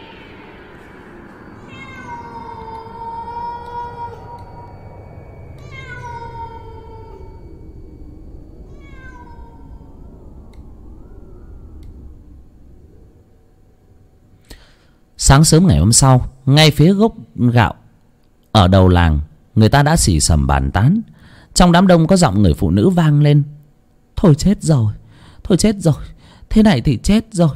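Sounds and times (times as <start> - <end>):
cat meowing mournfully at night: 0.0 - 0.8, 1.6 - 4.8, 5.6 - 7.7, 8.7 - 10.4
low rumbling noise: 0.0 - 27.5
speech: 15.3 - 17.8, 18.6 - 23.6, 24.2 - 27.5.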